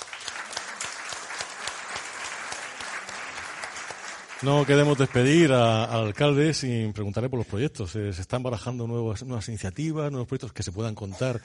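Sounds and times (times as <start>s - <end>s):
audience of about 150 people applauding at a history and mystery congress: 0.0s - 6.4s
speech: 4.4s - 11.4s.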